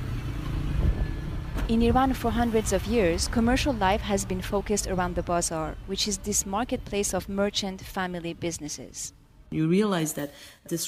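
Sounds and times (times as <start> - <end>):
motorbike-like drone: 0.0 - 7.1
downtown Tehran street traffic car engines rumbling: 0.0 - 9.5
speech: 1.7 - 10.8.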